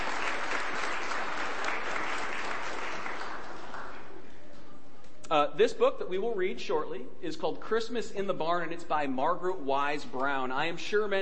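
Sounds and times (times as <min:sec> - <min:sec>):
audience round of applause: 0:00.0 - 0:04.3
speech: 0:05.3 - 0:11.2.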